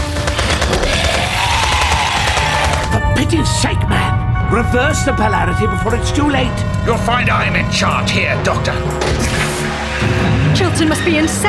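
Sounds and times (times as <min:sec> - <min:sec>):
volley of rapid gunfire from soldiers firing at will: 0:00.0 - 0:03.0
speech: 0:03.3 - 0:11.4.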